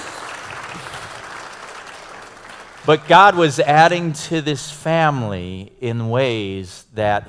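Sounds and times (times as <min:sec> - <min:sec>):
church audience applause: 0:00.0 - 0:03.6
speech: 0:02.8 - 0:07.2.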